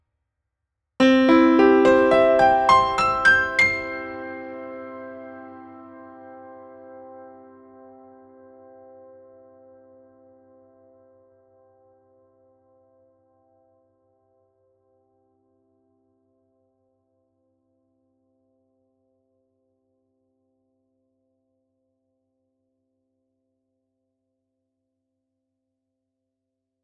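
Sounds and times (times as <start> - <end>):
C major chord: 1.0 - 9.9.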